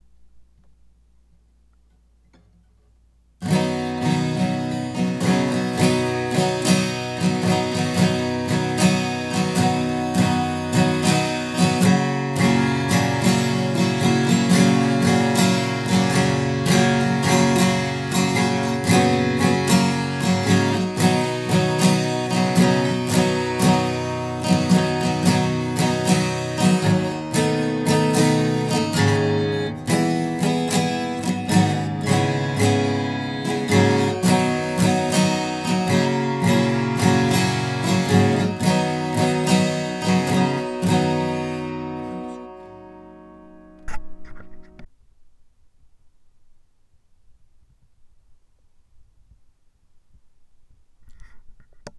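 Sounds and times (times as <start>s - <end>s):
guitar strumming: 3.4s - 44.9s.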